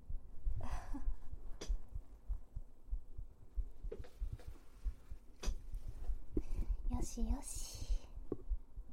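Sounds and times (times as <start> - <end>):
human heartbeat: 0.0 - 8.9
faint rustling and handling noises: 3.8 - 8.5
speech: 7.2 - 7.7.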